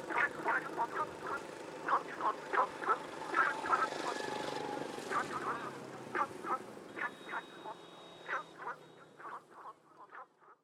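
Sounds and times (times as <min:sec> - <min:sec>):
frogs croaking: 0:00.0 - 0:04.0, 0:05.1 - 0:10.6.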